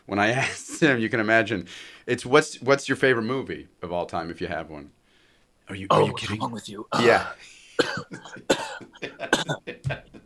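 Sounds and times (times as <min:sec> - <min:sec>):
speech: 0:00.1 - 0:05.0, 0:05.7 - 0:10.0
man coughing: 0:05.9 - 0:09.7.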